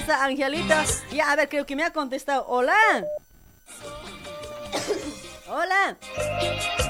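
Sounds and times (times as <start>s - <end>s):
speech: 0.2s - 3.2s, 4.7s - 6.8s
person coughing: 4.7s - 5.3s.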